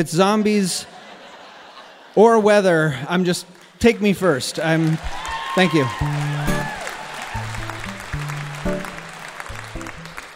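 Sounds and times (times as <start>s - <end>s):
speech: 0.0s - 1.0s, 2.2s - 6.5s
laughter: 0.7s - 2.2s
audience applauding: 3.6s - 10.3s.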